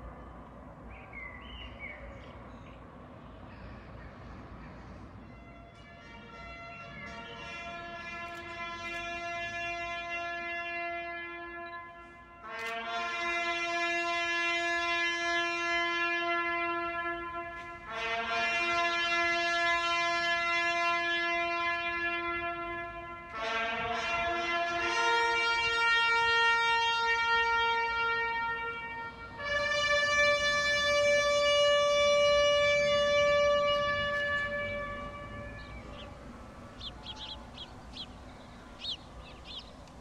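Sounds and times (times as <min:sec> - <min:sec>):
bugle playing in long sustained notes: 0:05.2 - 0:39.9.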